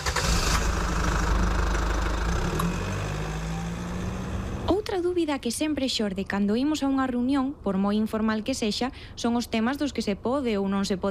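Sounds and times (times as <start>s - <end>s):
car engine starting and idling: 0.0s - 4.8s
speech: 5.0s - 11.0s.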